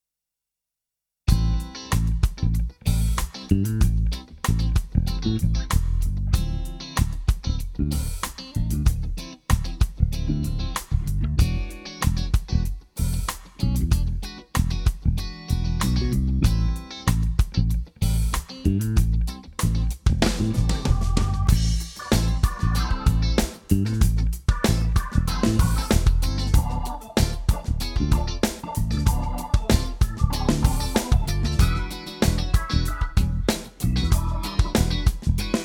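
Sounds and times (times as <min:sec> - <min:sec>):
funk organ bass: 0:01.3 - 0:35.6.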